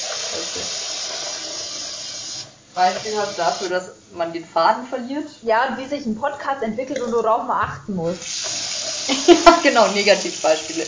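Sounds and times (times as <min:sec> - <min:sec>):
water running from a tap: 0:00.0 - 0:03.8, 0:08.2 - 0:10.8
speech: 0:02.8 - 0:08.5, 0:09.1 - 0:10.8
laughter: 0:09.1 - 0:09.7.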